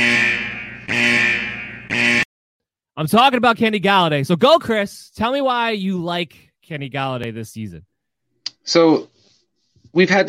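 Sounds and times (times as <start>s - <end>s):
loud harsh electronic buzzer blaring: 0.0s - 2.3s
speech: 3.0s - 7.9s, 8.6s - 9.1s, 9.9s - 10.2s.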